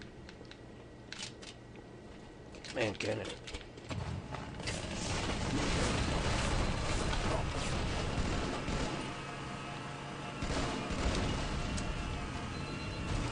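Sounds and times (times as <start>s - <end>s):
speech: 2.8s - 3.6s
whiny buzzing video game vehicle engine: 3.6s - 13.3s
gunfire-like bursts: 4.9s - 9.3s, 10.4s - 12.3s, 13.0s - 13.3s.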